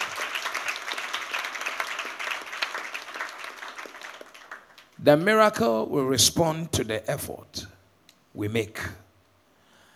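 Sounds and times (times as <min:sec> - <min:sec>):
crowd applauding for the Lord: 0:00.0 - 0:05.0
speech: 0:05.0 - 0:07.6, 0:08.4 - 0:09.0.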